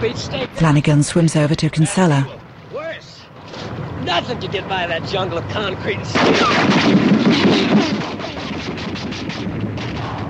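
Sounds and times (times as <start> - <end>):
speech: 0.0 - 2.4, 4.1 - 8.2
gunfire bursts strafing the water: 6.2 - 10.2.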